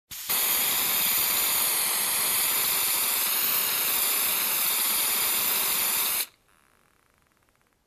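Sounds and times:
spray can spraying: 0:00.1 - 0:06.4.

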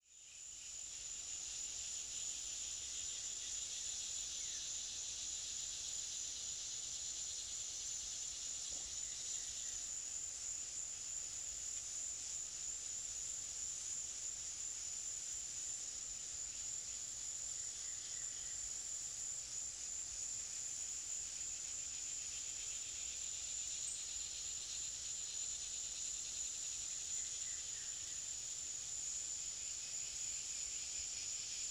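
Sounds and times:
cicadas in a tropical forest: 0:00.0 - 0:31.6.

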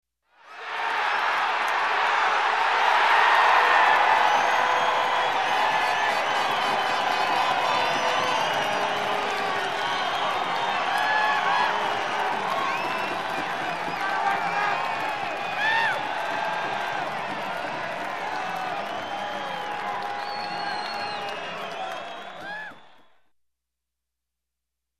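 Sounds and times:
video game crowd cheering and having fun: 0:00.3 - 0:23.3.

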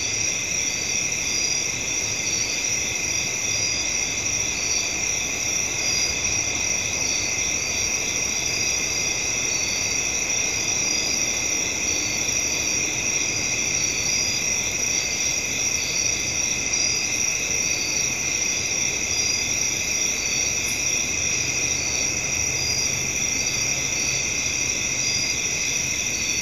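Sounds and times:
crickets trilling at night: 0:00.0 - 0:26.3.

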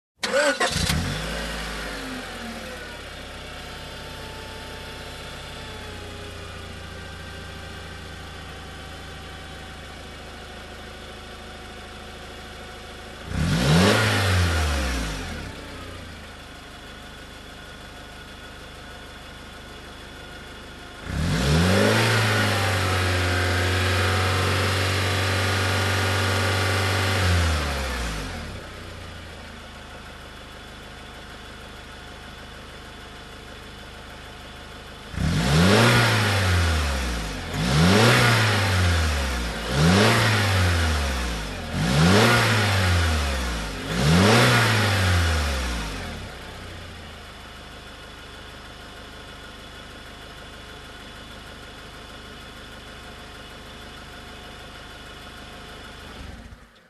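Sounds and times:
car engine revving up: 0:00.2 - 0:03.2, 0:13.2 - 0:16.1, 0:20.9 - 0:29.1, 0:35.1 - 0:46.9.

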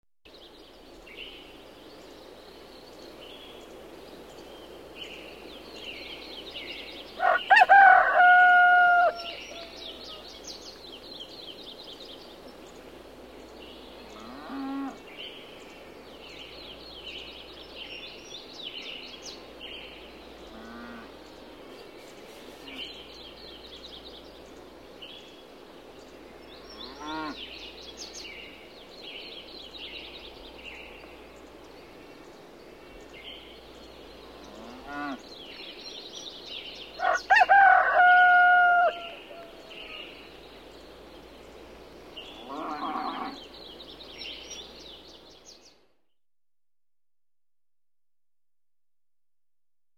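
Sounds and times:
birds chirping in the morning: 0:00.3 - 0:45.9
rooster crowing in the morning: 0:07.2 - 0:10.1, 0:37.0 - 0:39.6.

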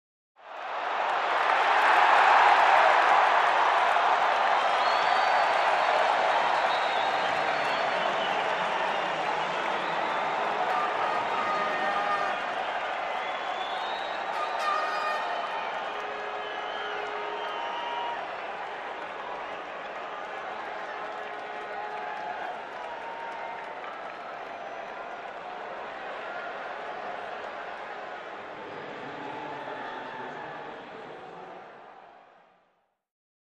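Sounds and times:
crowd cheering at a sports game: 0:00.4 - 0:32.8
horns: 0:05.6 - 0:22.6.

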